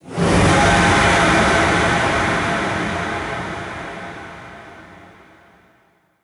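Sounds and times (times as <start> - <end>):
long sound effect: 0.0 - 5.6.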